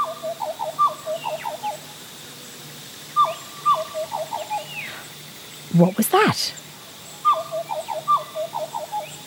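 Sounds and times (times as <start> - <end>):
black butcherbird flute-like whistled call: 0.0 - 1.8, 3.1 - 5.0, 7.2 - 9.2
soft rainforest hum: 0.0 - 9.2
speech: 5.8 - 6.6.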